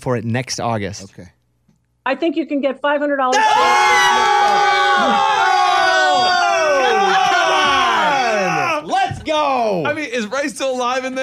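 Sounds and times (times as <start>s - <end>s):
speech: 0.0s - 1.4s, 2.0s - 5.4s, 9.3s - 11.2s
crowd yelling and cheering with whoops and shouts: 3.3s - 9.3s.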